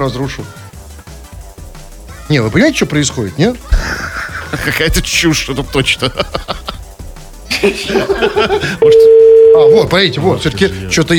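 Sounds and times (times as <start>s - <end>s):
speech: 0.0s - 0.6s, 2.3s - 6.8s, 7.6s - 11.1s
person laughing: 3.7s - 4.9s, 5.8s - 6.9s, 7.5s - 9.0s
loud steady telephone tone: 8.8s - 9.9s.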